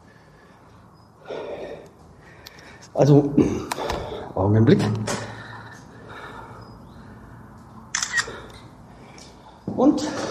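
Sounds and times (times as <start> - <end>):
speech: 2.9 - 3.8, 4.4 - 5.2, 9.8 - 10.2
camera shutter clicks taking photos: 7.9 - 8.5.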